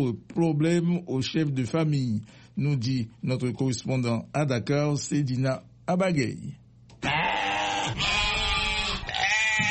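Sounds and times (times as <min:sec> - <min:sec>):
speech: 0:00.0 - 0:06.6
sheep bleating at a livestock market in Dakar: 0:07.0 - 0:09.7.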